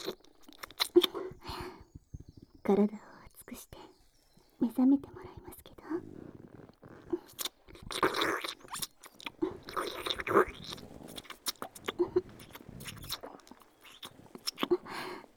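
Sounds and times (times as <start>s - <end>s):
wet smacking deep-kissing sounds: 0.0s - 1.4s, 6.5s - 15.2s
speech: 2.7s - 3.1s, 4.7s - 5.2s.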